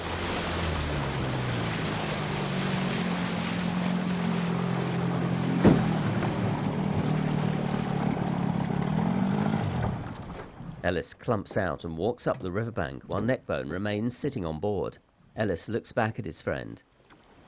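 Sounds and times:
boat motor humming on a calm river: 0.0 - 10.8
gentle water wash: 0.0 - 17.4
speech: 10.9 - 16.9.

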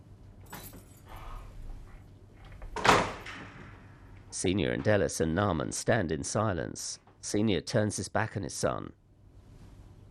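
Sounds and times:
kitchen door swinging shut with a sharp knock: 2.7 - 3.7
speech: 4.4 - 9.0.

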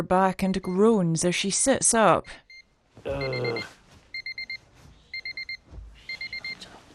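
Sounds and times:
speech: 0.0 - 2.4, 3.0 - 3.8
electronic alarm clock beeping in shrill bursts: 0.5 - 0.9, 2.2 - 6.6.

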